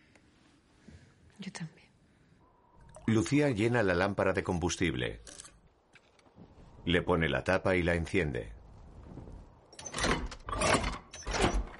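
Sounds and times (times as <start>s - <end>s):
speech: 3.1s - 5.4s, 6.9s - 8.6s
wooden cabin door creaking open: 9.8s - 11.7s.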